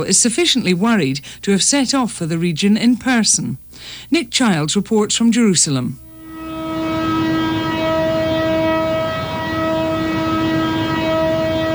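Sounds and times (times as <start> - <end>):
speech: 0.0 - 6.1
city-wide siren marking start of Yom Kippur: 6.0 - 11.7.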